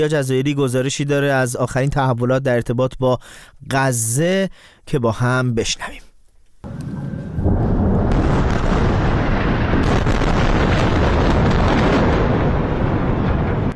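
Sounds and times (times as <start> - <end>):
speech: 0.0 - 6.1
bombing explosions: 6.7 - 13.7.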